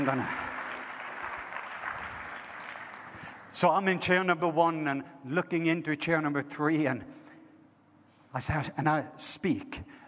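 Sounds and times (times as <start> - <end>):
speech: 0.0 - 0.4, 3.6 - 7.2, 8.4 - 10.0
light polite golf clapping from a small audience: 0.0 - 3.4.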